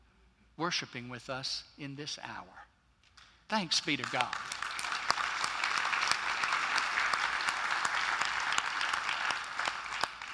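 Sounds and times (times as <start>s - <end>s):
speech: 0.6s - 2.7s, 3.5s - 4.6s
audience at a worship service applauding: 4.0s - 10.3s.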